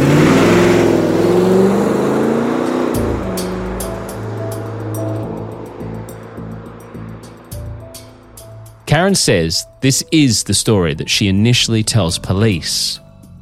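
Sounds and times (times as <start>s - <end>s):
car engine revving as the car drives off: 0.0s - 9.8s
speech: 9.1s - 13.0s.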